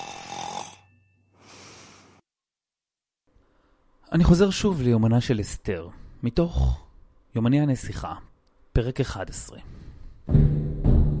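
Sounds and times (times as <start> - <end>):
loud snoring: 0.0 - 0.9
speech: 4.1 - 6.8, 7.4 - 10.5.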